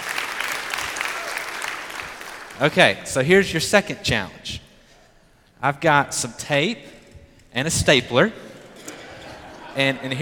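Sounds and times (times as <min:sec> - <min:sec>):
audience applause: 0:00.0 - 0:02.6
speech: 0:02.6 - 0:04.6, 0:05.6 - 0:06.9, 0:07.6 - 0:08.4, 0:09.8 - 0:10.2
laughter: 0:08.5 - 0:10.2.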